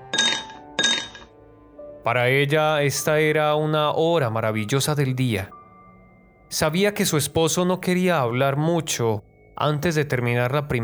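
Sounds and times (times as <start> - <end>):
ice cubes clinking against a whisky glass: 0.1 - 1.2
speech: 2.0 - 5.6, 6.5 - 10.8.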